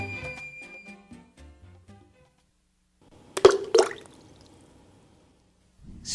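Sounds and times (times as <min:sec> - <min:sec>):
small stone splashing into water: 0:03.4 - 0:04.2.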